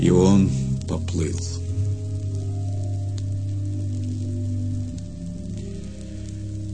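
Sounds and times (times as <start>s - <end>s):
speech: 0.0s - 1.6s
constant low rumbling drone: 0.0s - 6.7s
heavy rain pounding on a roof: 1.9s - 6.7s.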